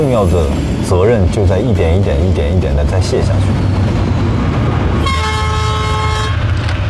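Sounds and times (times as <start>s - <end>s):
train rumbling as it pulls away from a railway station: 0.0s - 6.8s
speech: 0.1s - 3.7s
long sustained train horn blast: 5.0s - 6.6s.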